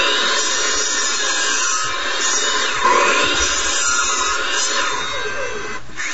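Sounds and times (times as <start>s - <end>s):
miter saw blade cutting through material: 0.0s - 6.1s.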